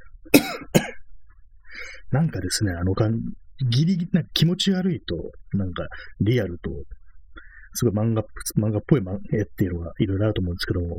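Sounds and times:
person coughing: 0.4s - 1.0s
speech: 2.1s - 7.0s, 7.7s - 10.9s
faint rustle or breath: 7.0s - 7.8s.

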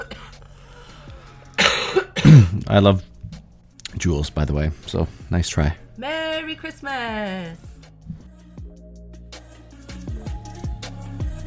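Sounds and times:
harsh cough: 0.0s - 0.4s, 1.6s - 2.8s
speech: 2.4s - 3.1s, 4.0s - 7.7s.

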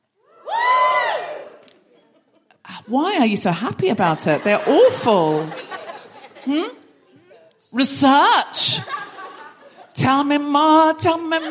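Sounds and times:
bright sustained whoop: 0.2s - 1.6s
live audience cheering: 0.3s - 1.6s
speech: 2.9s - 5.7s, 6.4s - 6.8s, 7.7s - 9.0s, 10.0s - 11.5s
laughter: 4.0s - 6.8s, 8.6s - 9.9s.

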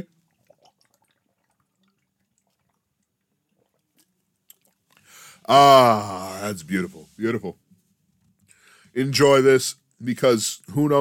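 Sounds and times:
sipping from a drink after a toast: 0.0s - 5.3s
breathy exhale: 5.0s - 5.5s, 8.5s - 9.0s
speech: 5.5s - 7.6s, 9.0s - 10.9s.

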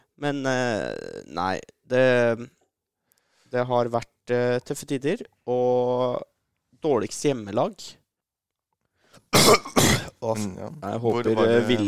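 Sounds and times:
speech: 0.2s - 2.6s, 3.5s - 8.0s, 9.3s - 11.8s
faint breath: 3.0s - 3.6s
harsh coughs: 9.3s - 10.2s.

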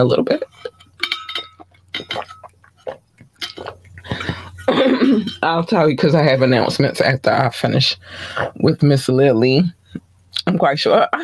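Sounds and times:
speech: 0.0s - 0.7s, 5.1s - 9.8s, 10.4s - 11.2s
steady low hum: 0.0s - 11.2s
glass clinking as a person gets water: 0.4s - 5.6s
water splashing: 1.6s - 4.7s.

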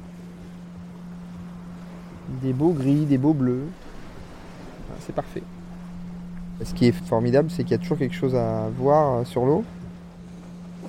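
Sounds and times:
continuous low motor drone: 0.0s - 10.8s
steady sea wind at sea under grey skies: 0.0s - 10.8s
speech: 2.3s - 3.8s, 5.0s - 5.6s, 6.6s - 9.8s.

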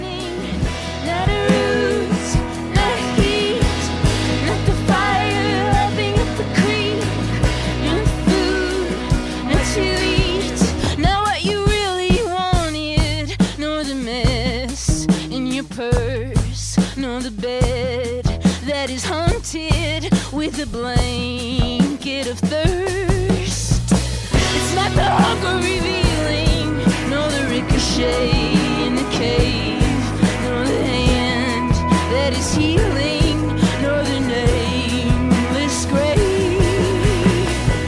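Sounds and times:
person singing a vocal melody: 0.0s - 23.6s, 24.2s - 37.8s
full band song with bass, strummed guitars and percussion: 0.0s - 37.8s.

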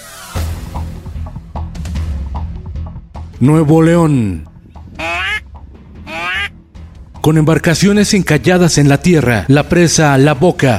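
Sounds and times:
speech: 3.4s - 4.5s, 7.2s - 10.7s
ducks quacking at a dried-up dam: 5.0s - 5.4s, 6.0s - 6.5s.

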